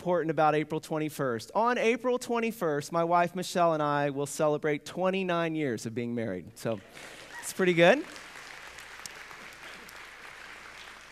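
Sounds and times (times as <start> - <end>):
speech: 0.0 - 8.2
applause from a sizable audience: 6.9 - 11.1.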